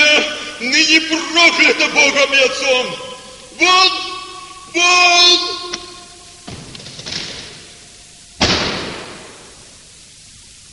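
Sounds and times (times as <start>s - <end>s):
speech: 1.0s - 4.1s, 4.7s - 5.8s
heavy bronze door slamming shut: 6.5s - 7.6s, 8.4s - 9.4s.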